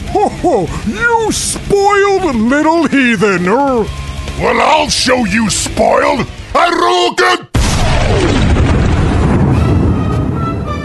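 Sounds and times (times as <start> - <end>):
speech: 0.2 - 7.4
fireball shot from a figure's hands making a roaring whoosh: 7.6 - 10.0.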